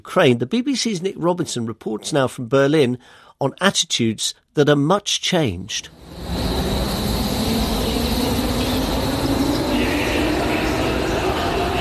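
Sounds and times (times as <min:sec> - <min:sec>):
speech: 0:00.0 - 0:06.4
low drone: 0:05.9 - 0:11.7
rumbling rail noise of a train in a large station: 0:05.9 - 0:11.7.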